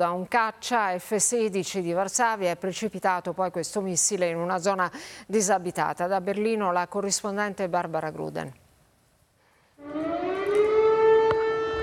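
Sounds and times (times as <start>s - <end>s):
speech: 0.0s - 8.6s
air raid siren in Tarnava Kolonia, Lublin province, eastern Poland: 9.8s - 11.8s.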